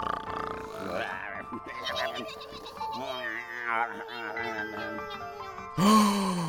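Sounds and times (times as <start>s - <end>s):
voices imitating snoring with nasal grunts and snorts: 0.0s - 5.0s.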